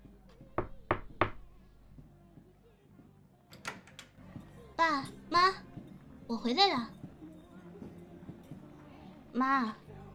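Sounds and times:
firm knocking on a door: 0:00.5 - 0:01.6
speech: 0:04.8 - 0:05.6, 0:06.3 - 0:07.0, 0:09.4 - 0:09.8.

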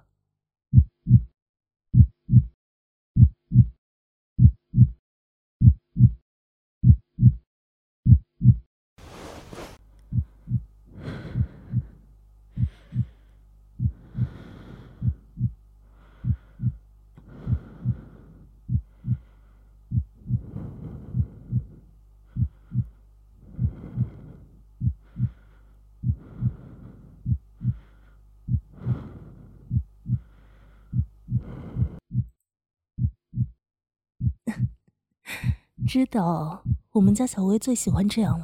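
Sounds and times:
heartbeat thumping in lub-dub pairs: 0:00.7 - 0:01.3, 0:01.9 - 0:02.6, 0:03.2 - 0:03.8, 0:04.4 - 0:05.0, 0:05.6 - 0:06.2, 0:06.8 - 0:07.4, 0:08.0 - 0:08.7, 0:09.5 - 0:12.0, 0:12.6 - 0:15.6, 0:16.2 - 0:27.9, 0:28.5 - 0:32.3, 0:33.0 - 0:33.6, 0:34.2 - 0:37.3, 0:37.9 - 0:38.4
faint breathy hum: 0:09.0 - 0:32.2, 0:35.3 - 0:38.4
speech: 0:35.9 - 0:38.4.

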